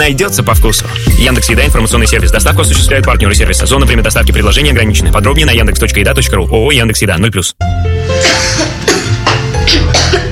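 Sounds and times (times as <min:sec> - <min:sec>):
speech: 0:00.0 - 0:08.5
children coughing: 0:08.2 - 0:10.2.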